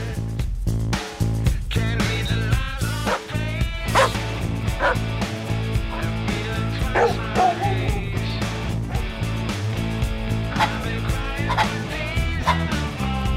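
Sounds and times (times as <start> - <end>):
continuous music: 0.0 - 13.3
dogs barking and yipping: 3.0 - 3.3, 3.9 - 5.1, 5.8 - 6.2, 6.8 - 9.2, 10.5 - 11.8, 12.4 - 12.7.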